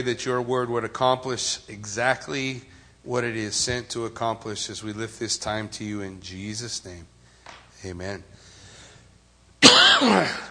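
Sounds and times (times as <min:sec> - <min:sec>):
speech: 0:00.0 - 0:07.1, 0:07.8 - 0:08.4, 0:10.0 - 0:10.5
person coughing: 0:09.6 - 0:10.5.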